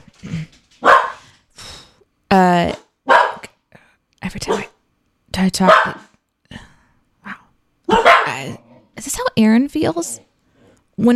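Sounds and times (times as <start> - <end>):
dogs barking: 0.8 - 1.3, 3.0 - 3.5, 4.4 - 4.8, 5.6 - 6.2, 7.9 - 8.6
speech: 2.4 - 2.8, 5.4 - 6.0, 9.4 - 10.3, 11.0 - 11.1.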